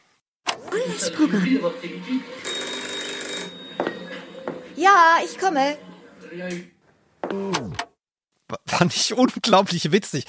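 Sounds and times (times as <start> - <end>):
speech: 0.6 - 2.5, 4.8 - 6.7, 7.3 - 7.7, 8.6 - 10.2
telephone ringing: 0.6 - 6.2.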